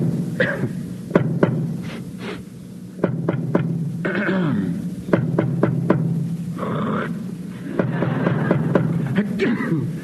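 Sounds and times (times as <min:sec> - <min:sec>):
steady low hum: 0:00.0 - 0:10.0
short sharp coughs and throaty hacks as tap code: 0:00.4 - 0:00.8, 0:04.1 - 0:04.7, 0:09.2 - 0:10.0
laughter: 0:07.5 - 0:10.0.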